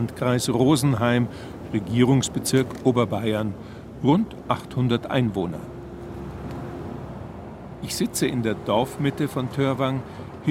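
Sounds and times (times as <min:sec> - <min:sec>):
speech: 0:00.0 - 0:05.7, 0:07.8 - 0:10.5
tractor pulling a trailer rumbling past in a village centre in Upper Bavaria: 0:00.0 - 0:10.5.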